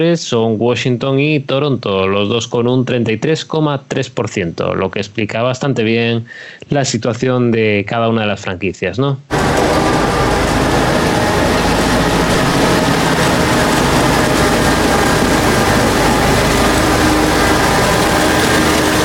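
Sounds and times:
speech: 0.0 - 10.0
ice resurfacer engine starting up: 9.3 - 19.0.

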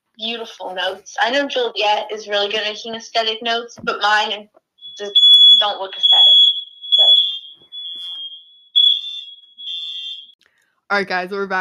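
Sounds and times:
speech: 0.2 - 6.4, 10.9 - 11.6
shrill high-pitched smoke alarm beeping: 4.8 - 10.4.

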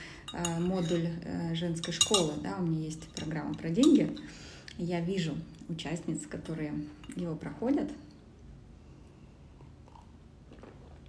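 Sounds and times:
low hiss: 0.0 - 9.4
speech: 0.3 - 8.1
person sipping and swallowing tea: 9.6 - 11.0.

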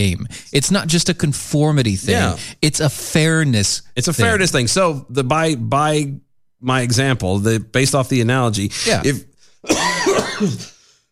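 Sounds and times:
speech: 0.0 - 9.8, 10.4 - 10.7
harsh rasping cough from something stuck in the throat: 8.7 - 11.0.

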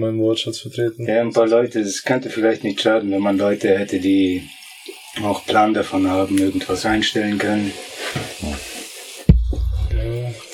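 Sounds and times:
speech: 0.0 - 4.6, 5.2 - 8.4
fizzing hiss of a carbonated soft drink: 2.3 - 9.3, 10.1 - 10.5
lower murmuring voice-like sounds: 9.6 - 10.5.

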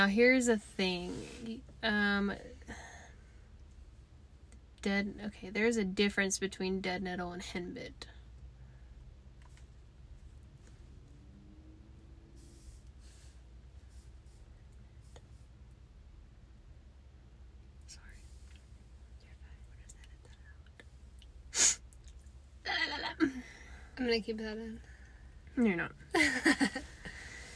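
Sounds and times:
speech: 0.0 - 2.9, 4.8 - 8.2, 24.0 - 24.9, 25.6 - 26.9
faint hiss: 0.0 - 27.5
person sneezing: 21.5 - 21.8.

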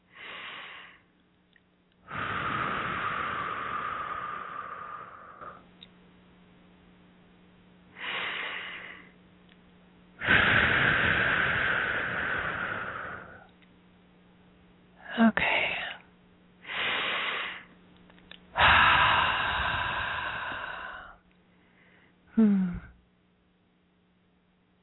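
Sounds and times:
deep breaths in through the nose and out through the mouth: 0.0 - 1.1, 2.1 - 5.7, 7.9 - 9.2, 10.2 - 13.5, 16.6 - 17.7, 18.6 - 23.0.

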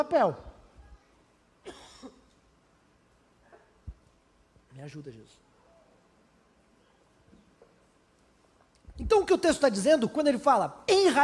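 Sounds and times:
speech: 0.0 - 0.5, 4.8 - 5.4, 9.0 - 11.2
slightly hoarse person coughing: 1.6 - 2.3.

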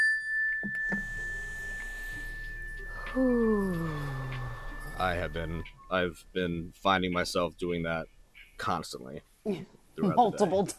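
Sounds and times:
mindfulness bell ringing: 0.0 - 6.2
speech: 3.1 - 4.1, 5.0 - 10.7.

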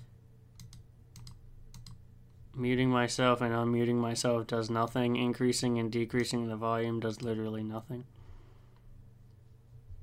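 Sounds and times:
low steady hum: 0.0 - 10.0
computer keyboard typing a chat message: 0.6 - 2.0
speech: 2.6 - 8.2.

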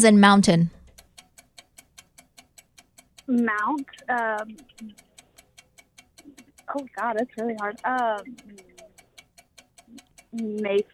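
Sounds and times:
speech: 0.0 - 0.8, 3.3 - 5.1, 6.7 - 8.7, 10.3 - 10.9
game clock ticking: 0.0 - 10.9.

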